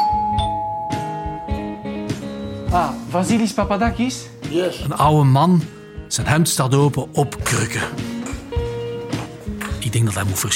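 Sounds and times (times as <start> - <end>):
doorbell chiming at a house door: 0.0 - 2.1
speech: 2.7 - 8.1, 9.9 - 10.5.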